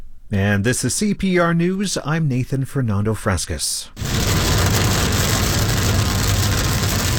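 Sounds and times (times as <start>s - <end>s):
speech: 0.3s - 4.3s
low engine-like rumble: 4.0s - 7.1s
rain pattering on a car windshield outside Copper Mountain and I-70: 4.0s - 7.1s.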